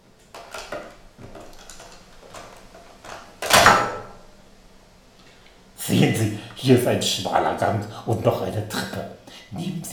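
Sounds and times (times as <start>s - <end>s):
old cellar door being forced open with scraping, rattling knocks and creaks: 3.1s - 4.2s
speech: 5.9s - 9.9s.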